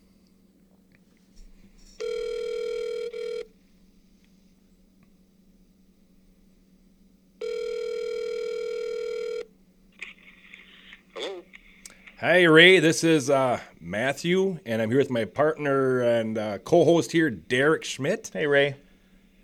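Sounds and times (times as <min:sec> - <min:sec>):
phone line ringing: 0:02.0 - 0:03.5, 0:07.4 - 0:09.5
telephone dialing: 0:02.0 - 0:03.5, 0:07.4 - 0:09.4
speech: 0:12.2 - 0:18.8.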